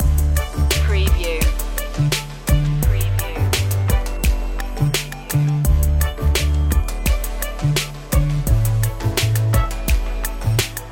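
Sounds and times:
kids hip hop loop: 0.0 - 10.8.

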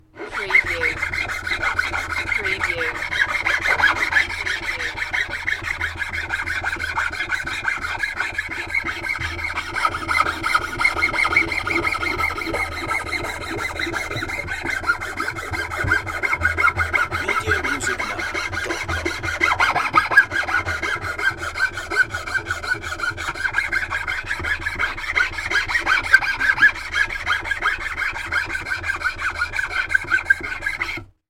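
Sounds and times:
handsaw sawing: 0.0 - 31.1.

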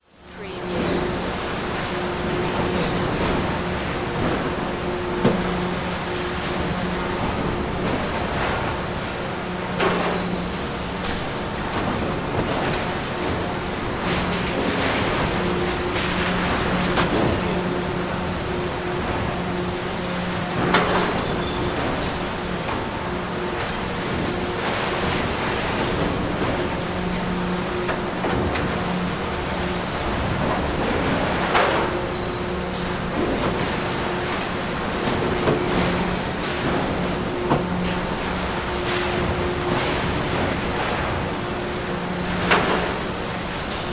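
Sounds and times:
factory machines: 0.1 - 43.9.

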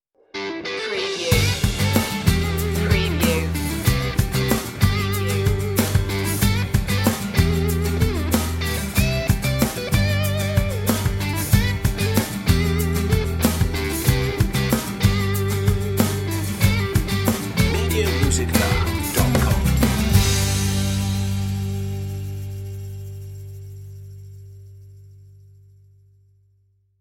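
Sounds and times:
guitar crash: 0.3 - 24.2.

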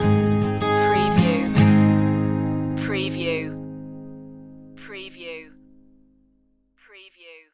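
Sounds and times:
music stinger: 0.0 - 4.4.

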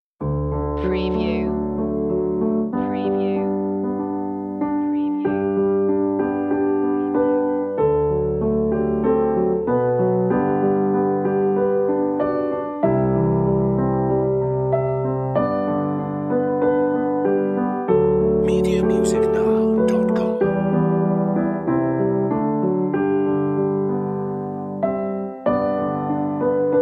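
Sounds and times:
emotional piano piece: 0.2 - 26.8.

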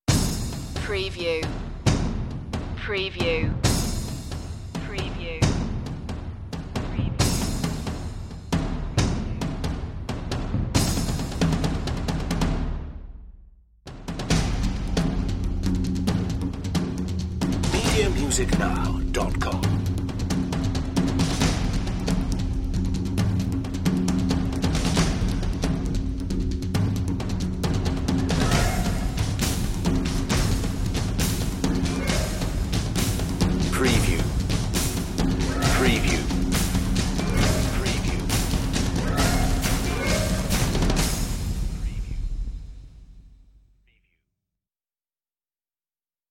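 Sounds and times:
big crystal cavern percussion: 0.1 - 13.2, 13.9 - 43.2.

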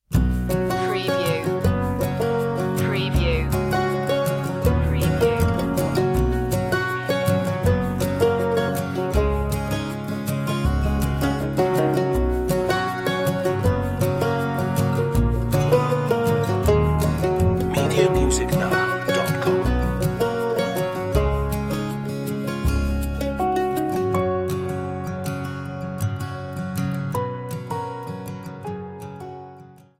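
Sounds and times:
mellow bluegrass music: 0.1 - 29.6.

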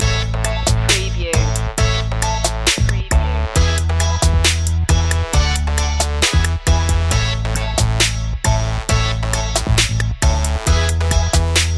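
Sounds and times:
music loop: 0.0 - 11.7.

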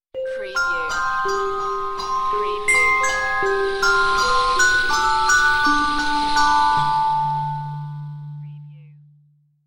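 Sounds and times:
metallic tribal bells in a sci-fi audio logo: 0.2 - 8.6
sweep in a sci-fi audio logo: 1.9 - 7.9.

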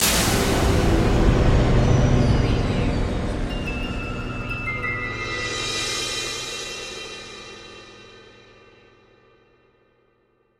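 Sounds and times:
production element music stab: 0.0 - 6.4.

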